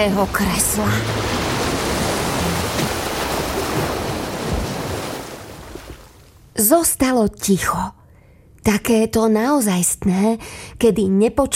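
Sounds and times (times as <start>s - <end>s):
speech: 0.0s - 1.4s, 6.6s - 8.0s, 8.6s - 11.5s
loud continuous roaring rush: 0.0s - 5.0s.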